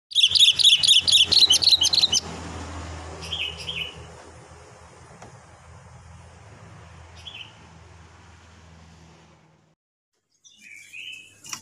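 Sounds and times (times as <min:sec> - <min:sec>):
Sooty-headed bulbul chirping: 0:00.1 - 0:02.3.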